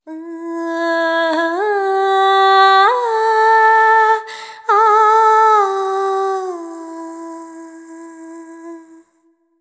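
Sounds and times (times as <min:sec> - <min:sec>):
female ethnic vocals: 0:00.0 - 0:09.5.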